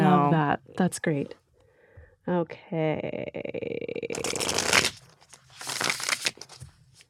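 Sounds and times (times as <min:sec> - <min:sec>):
speech: 0:00.8 - 0:01.4, 0:02.3 - 0:05.0
deck of tarot cards riffle shuffled: 0:04.1 - 0:07.0.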